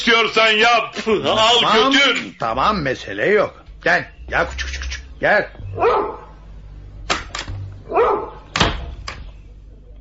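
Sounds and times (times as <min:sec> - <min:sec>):
speech: 0:00.0 - 0:06.2
dog barking: 0:05.8 - 0:06.4, 0:07.9 - 0:08.5.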